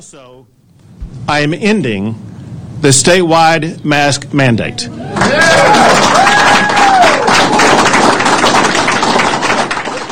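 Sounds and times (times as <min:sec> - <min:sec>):
speech: 0:00.0 - 0:00.6, 0:01.3 - 0:07.2
crowd applauding at a press event: 0:05.1 - 0:10.1.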